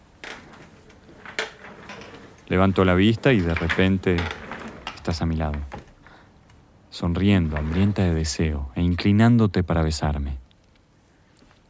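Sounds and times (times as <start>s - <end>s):
desk chair sliding across the floor: 0.2s - 5.9s, 7.3s - 8.2s
speech: 2.5s - 4.4s, 5.0s - 5.8s, 7.0s - 10.4s.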